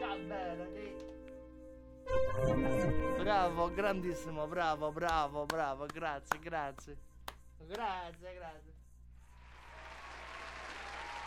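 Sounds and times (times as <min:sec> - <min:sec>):
speech: 0:02.4 - 0:08.7
audience applause after a performance: 0:09.4 - 0:11.2.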